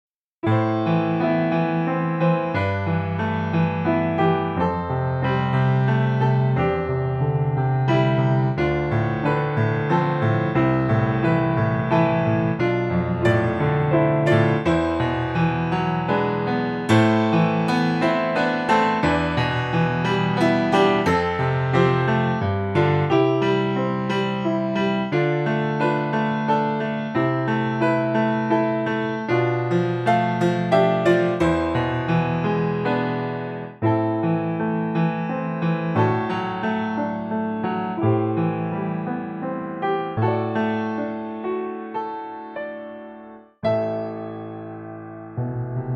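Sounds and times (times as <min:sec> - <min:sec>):
Yamaha C7: 0:00.0 - 0:45.9.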